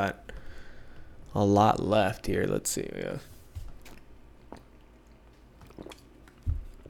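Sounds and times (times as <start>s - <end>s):
speech: 0.0s - 0.3s, 1.3s - 3.4s
person gulping water from a bottle: 3.8s - 6.8s.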